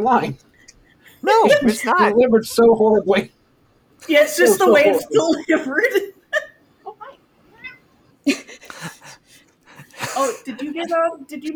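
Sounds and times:
speech: 0.0 - 0.5, 1.2 - 3.4, 4.0 - 6.4, 10.2 - 11.5
laughter: 0.9 - 1.9, 4.1 - 6.0, 8.3 - 11.0
faint short cat meows: 7.5 - 7.9.

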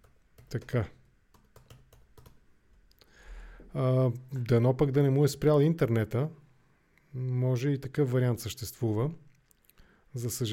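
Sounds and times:
tapping of keys on a computer keyboard typing a message: 0.0 - 2.4
speech: 0.5 - 1.0, 3.7 - 6.4, 7.1 - 9.2, 10.1 - 10.5.

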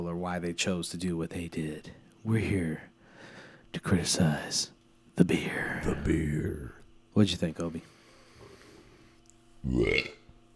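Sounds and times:
speech: 0.0 - 2.9, 3.7 - 7.9, 9.6 - 10.2
deep throaty burp: 9.7 - 10.2.

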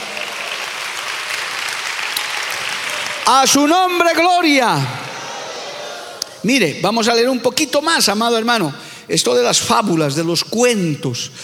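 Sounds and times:
crowd of many hands applauding: 0.0 - 6.3
speech: 3.3 - 5.0, 6.4 - 11.4.

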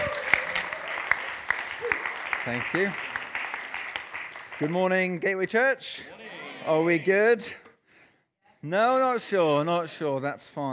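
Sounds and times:
audience applause: 0.0 - 4.9
speech: 2.5 - 3.1, 4.6 - 7.6, 8.6 - 10.7.

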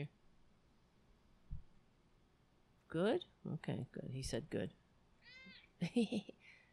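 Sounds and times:
speech: 2.9 - 6.6
cat meowing: 5.2 - 5.7.

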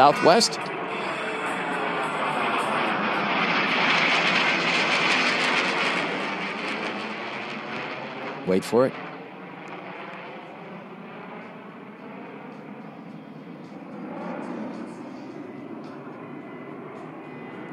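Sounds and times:
speech: 0.0 - 0.8, 8.5 - 9.0
heavy stealth bomber jet aircraft roaring low overhead: 0.0 - 17.7.

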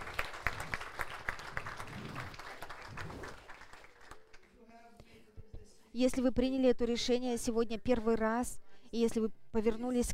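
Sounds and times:
congregation applauding: 0.0 - 4.6
speech: 6.0 - 10.1.

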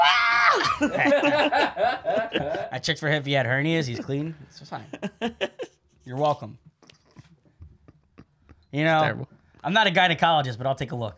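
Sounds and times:
person imitating a cartoon cat's pained scream: 0.0 - 0.8
laughter: 0.6 - 2.7
speech: 0.6 - 6.7, 8.7 - 11.1.

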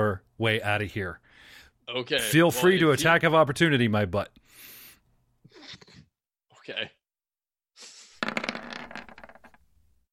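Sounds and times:
speech: 0.1 - 4.7, 6.7 - 7.0
dice rattling in a hand: 8.2 - 9.6.

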